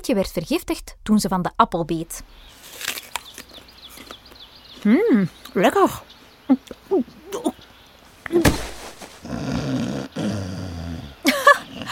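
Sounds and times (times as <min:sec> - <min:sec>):
speech: 0:00.0 - 0:02.9, 0:04.8 - 0:07.6, 0:08.3 - 0:08.7
loud raspy rattling snoring: 0:09.2 - 0:11.9
laughter: 0:11.2 - 0:11.9.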